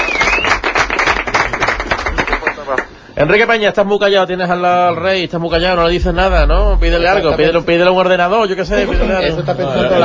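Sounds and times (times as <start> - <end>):
faint whistle: 0.0 - 0.6
crowd applauding: 0.0 - 2.9
speech: 3.2 - 10.0
laughter: 8.6 - 10.0.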